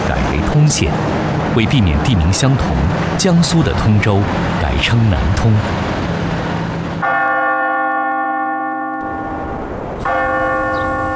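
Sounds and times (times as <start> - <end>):
speech: 0.1 - 5.9
clock tower bell striking in the old city of Nantong, Jiangsu, China: 7.0 - 11.1.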